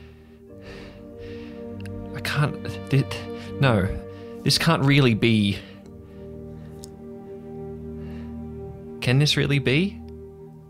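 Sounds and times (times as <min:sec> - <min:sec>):
man breathing heavily and hurriedly in panic: 0:00.0 - 0:02.1, 0:03.2 - 0:04.5, 0:05.5 - 0:09.0
speech: 0:02.2 - 0:05.7, 0:09.1 - 0:10.0.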